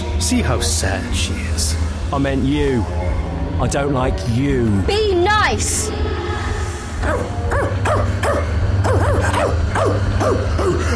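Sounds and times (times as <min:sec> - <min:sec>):
constant low hum: 0:00.0 - 0:10.9
speech: 0:00.2 - 0:06.3
dog barking: 0:07.0 - 0:10.8.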